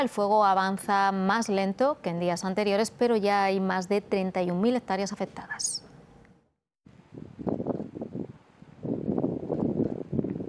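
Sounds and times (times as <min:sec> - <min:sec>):
speech: 0:00.0 - 0:05.8
strong wind gusting at a large wildfire: 0:06.9 - 0:10.4.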